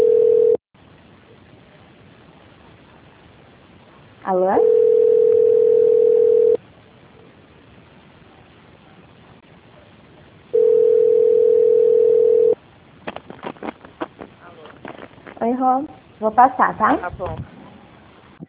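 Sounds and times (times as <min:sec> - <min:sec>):
telephone line beep during a call transfer: 0:00.0 - 0:00.6, 0:04.6 - 0:06.6, 0:10.6 - 0:12.6
speech: 0:04.3 - 0:04.9, 0:15.6 - 0:17.6.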